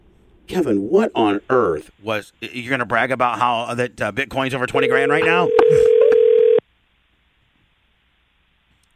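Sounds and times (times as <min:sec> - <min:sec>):
speech: 0:00.6 - 0:06.0
telephone ring tone while calling a cell phone: 0:04.8 - 0:06.6.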